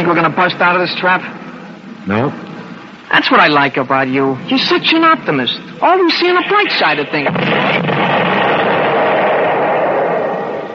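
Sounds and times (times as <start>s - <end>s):
speech: 0.0s - 1.4s, 2.0s - 2.5s, 3.1s - 8.4s
artillery fire from guns on a hill: 6.4s - 10.7s.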